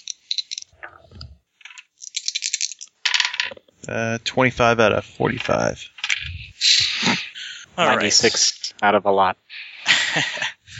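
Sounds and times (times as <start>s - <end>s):
dice clattering and tumbling across a hard tabletop: 0.0s - 0.8s, 1.6s - 3.6s
speech: 3.9s - 5.9s, 7.8s - 9.4s, 10.1s - 10.5s
laughter: 5.6s - 8.5s, 9.6s - 10.7s.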